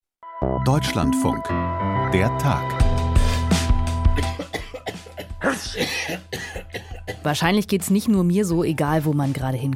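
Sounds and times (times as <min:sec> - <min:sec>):
speech: 0:00.4 - 0:02.8, 0:05.4 - 0:09.7
person coughing: 0:04.1 - 0:07.3
throat clearing: 0:04.2 - 0:07.2.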